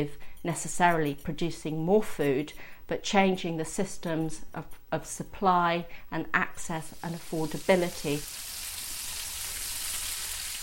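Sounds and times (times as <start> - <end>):
speech: 0.0 - 8.4
homemade hamburgers sizzling in a pan: 6.9 - 10.6.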